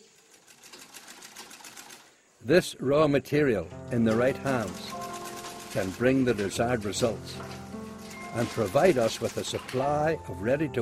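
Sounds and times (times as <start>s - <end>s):
sewing machines running in a sewing shop making ready-to-wear garments: 0.0s - 2.1s, 4.1s - 10.0s
speech: 2.4s - 4.9s, 5.7s - 7.6s, 8.4s - 10.8s.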